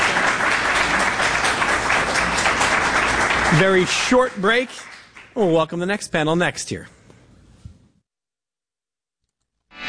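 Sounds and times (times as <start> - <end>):
sizable audience applauding a panel of guests: 0.0 - 5.5
speech: 3.5 - 7.0.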